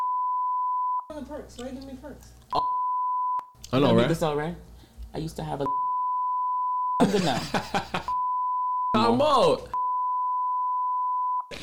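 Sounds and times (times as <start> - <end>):
high-pitched censor bleep: 0.0 - 1.1, 2.6 - 3.5, 5.7 - 7.0, 8.1 - 9.0, 9.8 - 11.5
speech: 1.1 - 2.7, 3.7 - 5.8, 7.1 - 8.2, 9.0 - 9.8
laughter: 7.0 - 8.2.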